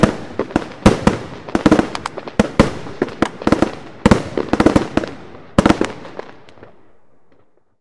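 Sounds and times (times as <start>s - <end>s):
series of fireworks salvos: 0.0s - 7.7s.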